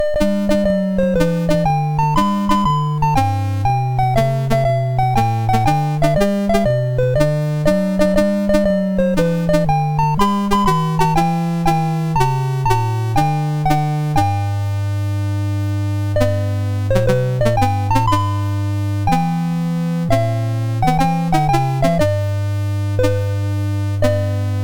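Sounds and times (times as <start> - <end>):
chiptune music on a MOS6581R2 sound chip: 0.0 - 24.6.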